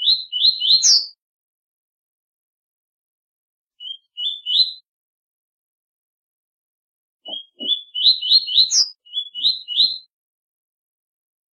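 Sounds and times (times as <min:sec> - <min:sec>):
double-collared seedeater whistled song: 0:00.0 - 0:01.2, 0:03.8 - 0:04.9, 0:07.2 - 0:10.1.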